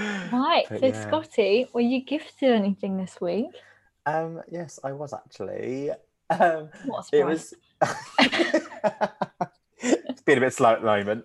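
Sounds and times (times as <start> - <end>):
person coughing in a deliberate pointed coughing fit: 0.0 - 1.1
laughter: 0.0 - 1.2, 6.3 - 11.2
speech: 0.5 - 11.2.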